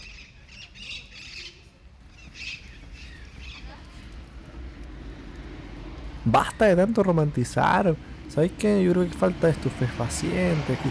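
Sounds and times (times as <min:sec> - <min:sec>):
several birds chirping and squawking: 0:00.0 - 0:04.0
steady low rumble of outdoor noise: 0:00.0 - 0:10.9
speech: 0:06.3 - 0:10.9.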